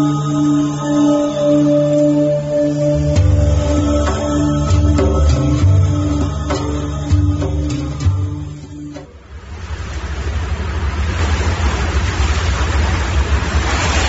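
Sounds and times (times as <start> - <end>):
steady low hum with a tonal drone: 0.0 - 14.0
rush of churning water: 3.0 - 14.0.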